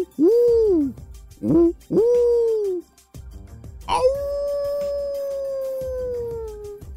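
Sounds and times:
speech: 0:00.0 - 0:02.3
wolf howling: 0:03.9 - 0:06.9.

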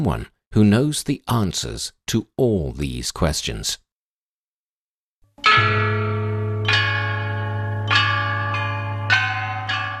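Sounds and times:
speech: 0:00.0 - 0:03.8
ancient bronze chime bells being struck: 0:05.4 - 0:09.9.

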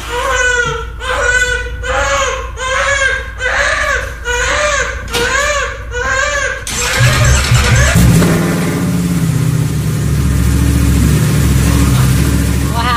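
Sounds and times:
baby wailing in rhythmic repeated cries: 0:00.0 - 0:08.2
motorcycle engine starting and revving: 0:06.7 - 0:12.9.

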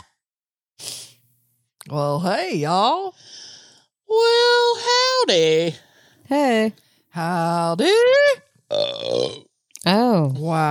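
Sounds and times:
speech: 0:01.9 - 0:03.4, 0:05.2 - 0:10.6
loud drawn-out burp: 0:08.7 - 0:09.6.

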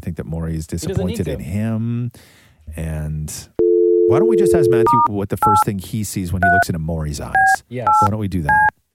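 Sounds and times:
speech: 0:00.1 - 0:08.8
telephone keypad dialing tones: 0:03.6 - 0:05.6.

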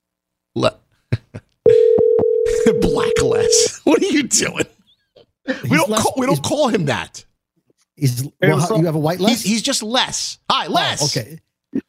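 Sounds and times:
telephone ringback tone on an outgoing call: 0:01.7 - 0:03.7
speech: 0:03.5 - 0:04.8, 0:05.7 - 0:07.3, 0:08.0 - 0:11.5.

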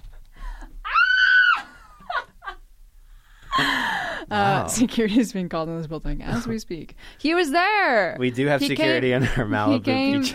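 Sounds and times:
person screaming at high pitch: 0:00.9 - 0:01.6
speech: 0:04.3 - 0:10.3.

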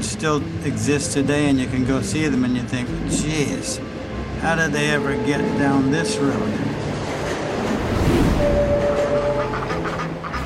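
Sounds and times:
train with a livestock car rolling along rails: 0:00.0 - 0:10.4
speech: 0:00.2 - 0:06.8
train wheels squealing metallically: 0:02.2 - 0:10.4.

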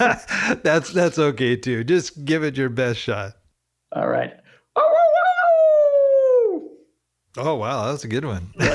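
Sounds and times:
speech: 0:00.0 - 0:05.0, 0:07.4 - 0:08.7
person imitating a wolf howl: 0:04.8 - 0:06.8.

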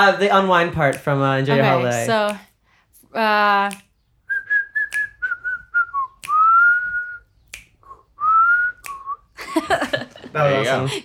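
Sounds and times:
speech: 0:00.0 - 0:02.5, 0:03.1 - 0:03.9, 0:09.5 - 0:11.0
sharp finger snaps: 0:03.6 - 0:09.3
clear whistled melody: 0:04.2 - 0:09.4
laughter: 0:09.4 - 0:11.0.

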